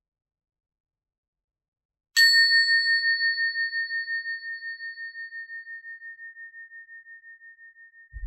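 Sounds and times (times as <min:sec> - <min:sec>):
single meditation bell ringing: 0:02.2 - 0:08.1.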